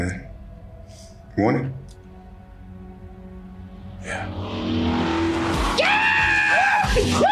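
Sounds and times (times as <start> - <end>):
speech: 1.4 - 1.8
car engine roaring: 3.2 - 7.3
car tires squealing and skidding across a driveway: 4.0 - 7.3.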